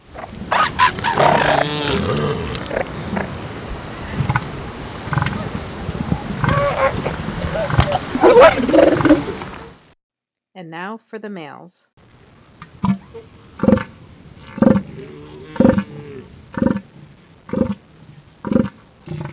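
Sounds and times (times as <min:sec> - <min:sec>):
group of female elephant seals calling: 0:00.2 - 0:03.4, 0:04.0 - 0:09.8, 0:12.7 - 0:17.9
speech: 0:10.8 - 0:12.0, 0:15.0 - 0:15.4.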